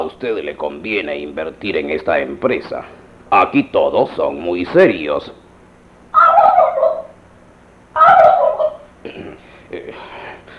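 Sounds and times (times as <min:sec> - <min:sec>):
speech: 0:00.0 - 0:05.4
turkey gobbling inside a business's premises: 0:06.1 - 0:07.2, 0:07.9 - 0:08.9.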